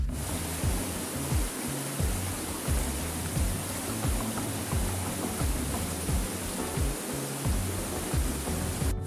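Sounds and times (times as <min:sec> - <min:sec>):
low thumps: 0:00.0 - 0:09.0
waterfall splashing into a pool: 0:00.0 - 0:09.0.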